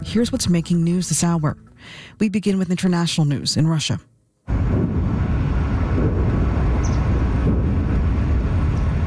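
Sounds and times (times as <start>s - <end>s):
speech: 0.0s - 4.1s
distant explosions rumbling: 4.5s - 9.0s.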